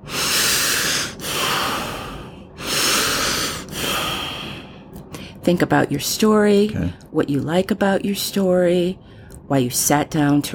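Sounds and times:
deep slow breathing as part of a writing warm-up: 0.0s - 5.4s
speech: 5.5s - 10.5s.

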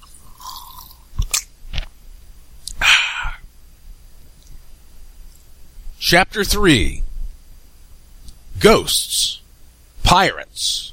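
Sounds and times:
person gulping water: 0.0s - 1.2s
person sipping water with slurps: 0.0s - 1.2s
speech: 6.1s - 7.0s, 8.6s - 9.4s, 10.1s - 10.9s.

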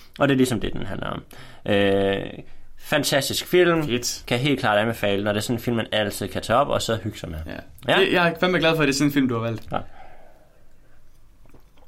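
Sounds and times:
speech: 0.2s - 10.0s
two people sipping and swallowing drinks at once: 11.0s - 11.8s.

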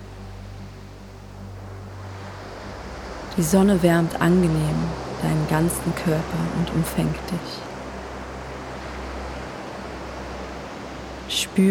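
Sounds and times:
breathy wind: 0.0s - 11.6s
faint low rumble: 0.0s - 11.6s
soft steady ocean surf: 0.0s - 11.6s
speech: 3.4s - 7.7s.

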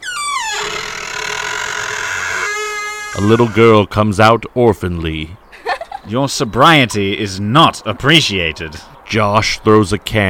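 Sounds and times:
house door creaking open with squealing hinges: 0.0s - 3.8s
speech: 3.2s - 5.4s, 6.1s - 10.2s.

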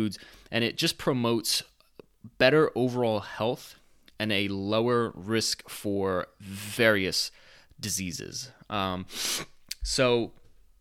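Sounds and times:
speech: 0.0s - 1.7s, 2.3s - 10.4s
nose sniffling from seasonal allergies after cutting grass: 9.1s - 9.6s.

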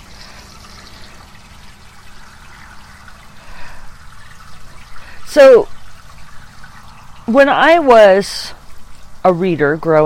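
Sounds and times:
water being poured out for crows under a porch: 0.0s - 10.0s
speech: 5.3s - 5.7s, 7.3s - 8.6s, 9.2s - 10.0s.

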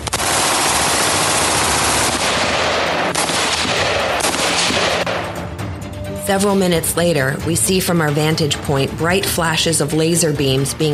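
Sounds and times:
dense rapid gunfire: 0.0s - 5.2s
speech: 6.3s - 10.9s.

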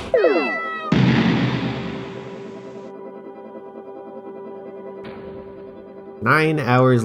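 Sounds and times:
video game kittens fighting with cartoonish meows: 0.2s - 0.9s
speech: 6.3s - 7.0s.

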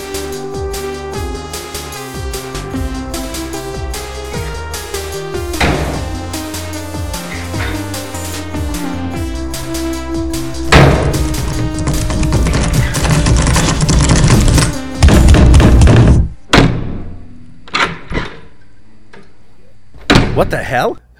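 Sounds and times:
door forced open, slamming into wall: 5.5s - 6.2s, 10.7s - 18.4s
sharp knocks and thumps: 5.6s - 6.2s, 10.7s - 17.0s
rattling clatter: 11.6s - 16.0s
speech: 20.7s - 21.1s.

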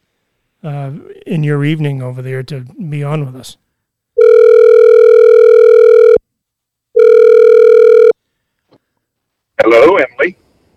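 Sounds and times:
speech: 0.6s - 3.6s, 9.6s - 10.4s
outgoing phone call ringback tone: 4.2s - 6.2s, 7.0s - 8.2s.

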